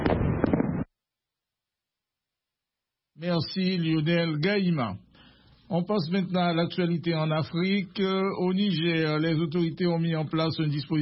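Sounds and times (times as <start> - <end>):
fireworks exploding: 0.0 - 0.9
speech: 3.2 - 5.0, 5.7 - 11.0.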